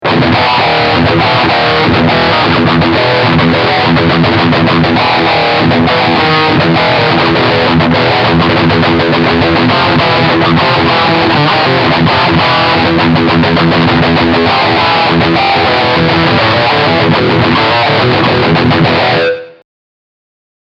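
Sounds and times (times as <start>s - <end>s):
electric guitar riff through a pickup: 0.0s - 19.6s.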